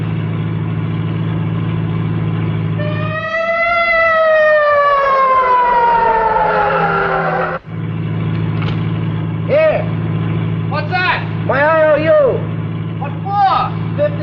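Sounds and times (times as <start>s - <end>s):
engine rumble: 0.0s - 14.2s
traffic noise: 0.0s - 14.2s
ambulance siren wailing: 2.8s - 7.7s.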